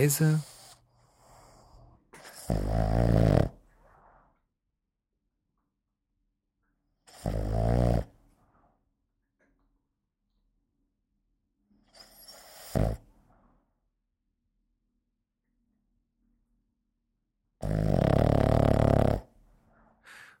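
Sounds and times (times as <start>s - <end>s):
speech: 0.0s - 0.5s, 2.5s - 3.2s
sleeping Boston terrier puppy snoring: 0.0s - 4.0s, 7.0s - 8.2s, 11.8s - 13.2s, 17.6s - 19.4s
sleeping Boston terrier puppy breathing quietly: 0.2s - 2.5s, 3.7s - 4.5s, 19.4s - 20.3s.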